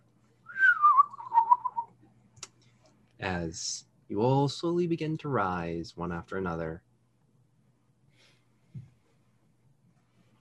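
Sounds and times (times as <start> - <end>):
person whistling an imitation of a bird call: 0.5 - 1.9
speech: 3.2 - 6.9.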